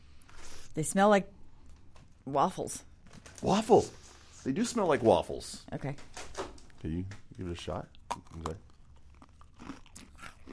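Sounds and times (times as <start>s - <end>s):
speech: 0.8s - 1.4s, 2.3s - 6.2s, 6.8s - 8.7s
someone biting into and chewing a crisp cookie with creamy filling: 8.0s - 10.5s.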